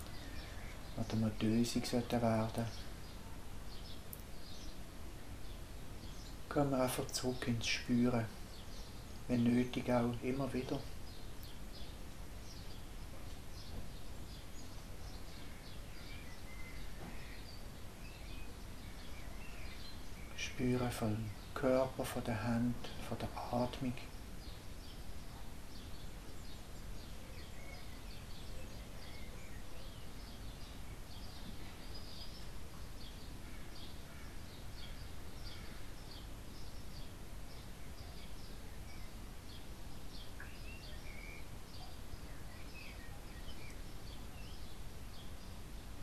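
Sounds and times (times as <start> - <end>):
birds chirping and twittering outdoors: 0.0 - 46.0
speech: 1.0 - 2.8, 6.5 - 8.4, 9.3 - 10.9, 20.6 - 24.1.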